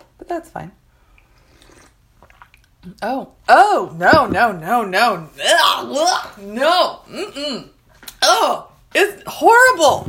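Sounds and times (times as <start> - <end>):
speech: 0.2 - 0.8, 2.8 - 10.0
sipping from a cup: 1.2 - 2.8
wet slurping mouth sounds: 1.5 - 2.8.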